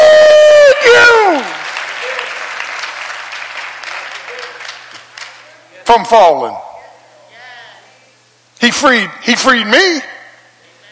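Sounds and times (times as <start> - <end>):
audience clapping hands: 0.9 - 5.6
speech: 6.0 - 6.6, 8.6 - 10.1.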